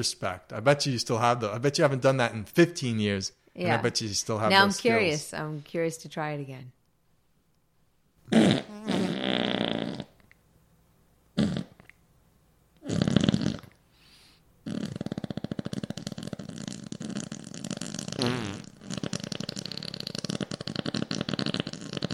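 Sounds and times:
speech: 0:00.0 - 0:06.8, 0:08.3 - 0:09.0
person blowing wet mouth farts imitating flatulence: 0:08.2 - 0:10.2, 0:11.4 - 0:12.0, 0:12.8 - 0:13.8, 0:14.6 - 0:22.1.

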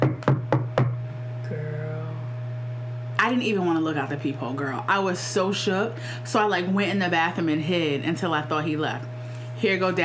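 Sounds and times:
sharp knocks on a door: 0:00.0 - 0:01.0
steady low electrical hum: 0:00.0 - 0:10.0
speech: 0:03.3 - 0:10.0.

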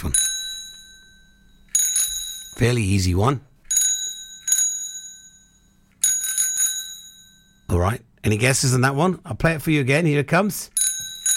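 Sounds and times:
bicycle bell ringing: 0:00.0 - 0:02.8, 0:03.7 - 0:07.7, 0:10.8 - 0:11.3
speech: 0:02.6 - 0:03.5, 0:07.8 - 0:10.7.

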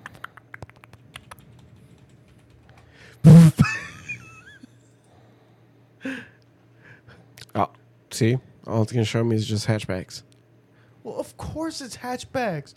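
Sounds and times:
typing on a computer keyboard: 0:00.0 - 0:03.0
speech: 0:03.2 - 0:03.7, 0:08.2 - 0:10.3, 0:11.6 - 0:12.7.

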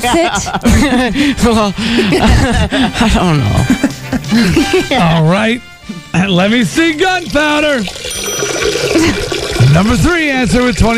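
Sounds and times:
laughter: 0:00.0 - 0:05.4
speech: 0:00.0 - 0:10.9
toilet flush sound effect: 0:06.6 - 0:10.9.

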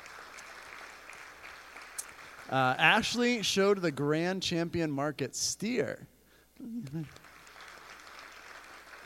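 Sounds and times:
crowd applauding at a church service: 0:00.0 - 0:03.0, 0:07.0 - 0:09.0
speech: 0:02.5 - 0:07.2.

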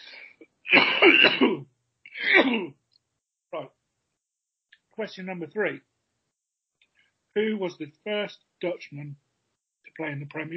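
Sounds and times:
harsh chesty coughing: 0:00.7 - 0:02.7
speech: 0:01.0 - 0:02.8, 0:03.5 - 0:03.8, 0:05.0 - 0:05.9, 0:07.4 - 0:09.2, 0:10.0 - 0:10.5.

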